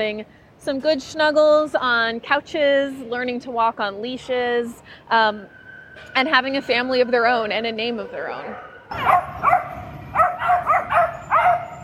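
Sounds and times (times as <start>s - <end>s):
speech: 0.0s - 9.5s
puppies barking and yipping with whiny notes: 8.5s - 11.8s.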